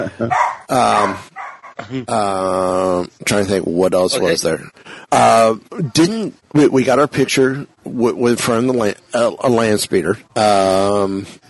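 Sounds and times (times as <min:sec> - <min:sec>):
speech: 0:00.0 - 0:11.4
female dog barking: 0:00.3 - 0:01.8.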